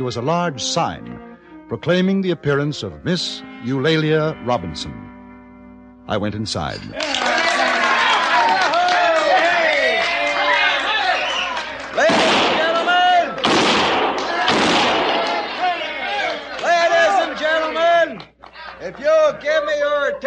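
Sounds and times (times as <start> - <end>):
speech: 0.0 - 5.1, 6.1 - 7.4
noisy crowd chattering and shouting in a saloon: 6.8 - 20.2
six-gun gunshots fired inside a saloon: 12.0 - 15.7.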